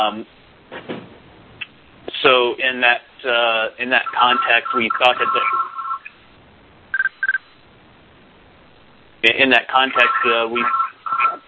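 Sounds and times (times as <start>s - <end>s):
speech: 0.0s - 1.2s, 2.2s - 5.6s, 9.3s - 10.8s
people talking over a conference call line: 3.9s - 6.0s, 9.6s - 11.4s
phone ringing in the background of a conference call: 4.1s - 6.1s, 6.9s - 7.4s, 9.9s - 11.4s.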